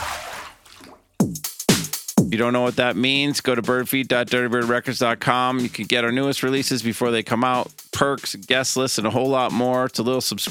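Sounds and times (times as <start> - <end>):
loud resonant water drips with downward pitch bend: 0.0 - 1.2
speech: 2.3 - 10.4.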